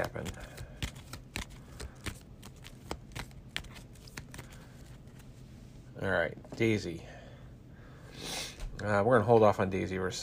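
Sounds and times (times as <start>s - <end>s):
deck of cards being shuffled with crisp snapping riffles: 0.0s - 5.4s
speech: 6.0s - 7.2s, 8.8s - 10.2s.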